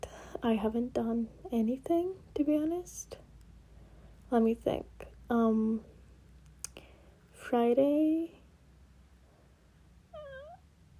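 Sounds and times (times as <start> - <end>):
speech: 0.4 - 3.2, 4.3 - 5.9, 7.4 - 8.4
person imitating a cat meow: 10.2 - 10.6.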